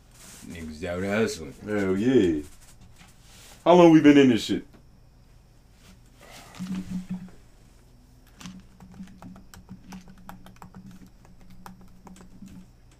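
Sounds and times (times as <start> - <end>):
low hum: 0.0 - 12.9
speech: 0.8 - 2.6, 3.6 - 4.7
typing a password on a computer keyboard: 8.5 - 12.9.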